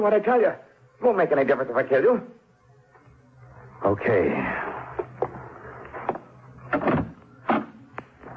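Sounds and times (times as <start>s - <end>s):
speech: 0.0s - 2.4s, 3.8s - 4.8s
closet door opening: 6.0s - 7.8s.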